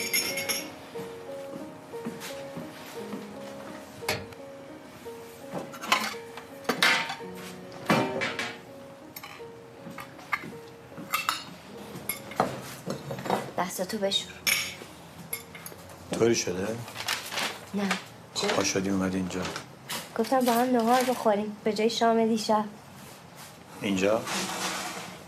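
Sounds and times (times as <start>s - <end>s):
plates and dishes clinking inside a cupboard: 0.0s - 0.8s, 5.5s - 13.6s, 14.3s - 16.3s
speech: 13.8s - 14.5s, 16.2s - 17.0s, 17.7s - 22.8s, 23.8s - 24.5s.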